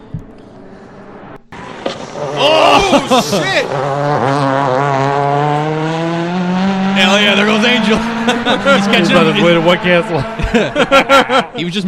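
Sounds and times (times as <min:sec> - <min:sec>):
race car engine roaring with trumpet-like exhaust: 0:00.0 - 0:11.8
speech: 0:01.9 - 0:05.6, 0:07.0 - 0:11.8
man exclaiming: 0:02.3 - 0:03.8, 0:07.0 - 0:10.2
laughter: 0:02.4 - 0:03.8, 0:07.4 - 0:11.8.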